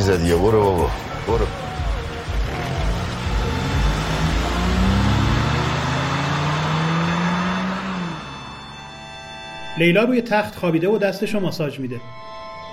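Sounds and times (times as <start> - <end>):
police car engine pulling away and accelerating: 0.0 - 9.7
speech: 0.1 - 1.7, 9.8 - 12.4.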